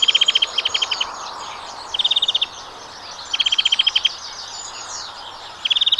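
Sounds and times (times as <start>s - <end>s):
European greenfinch calling in metallic trills: 0.0s - 5.9s
twittering: 0.0s - 5.9s.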